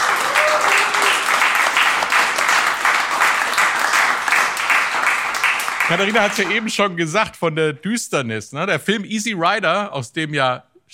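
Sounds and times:
crowd applauding: 0:00.0 - 0:06.9
speech: 0:05.9 - 0:10.9.

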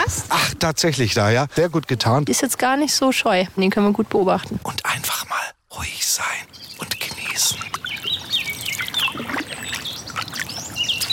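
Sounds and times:
speech: 0:00.1 - 0:07.8
birds chirping and trilling: 0:04.8 - 0:11.1
steady watery wash of a river: 0:06.2 - 0:11.1
canoe paddle strokes splashing upstream on a river: 0:06.7 - 0:11.1.

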